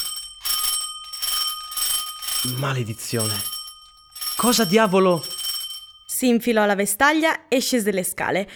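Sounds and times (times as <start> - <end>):
doorbell ringing insistently: 0.0 - 6.2
speech: 2.4 - 3.5, 4.4 - 5.4, 6.2 - 8.5.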